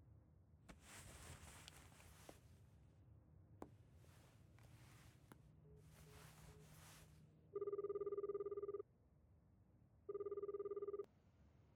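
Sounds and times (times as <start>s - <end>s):
rustling and shuffling: 0.7s - 2.9s, 3.6s - 7.3s
mobile phone ringing: 7.5s - 8.9s, 10.1s - 11.1s.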